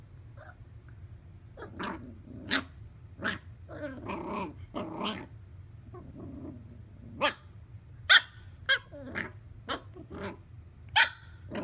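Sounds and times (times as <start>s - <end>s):
low steady hum: 0.0s - 11.6s
Bichon frise barking: 8.1s - 8.9s, 11.0s - 11.6s.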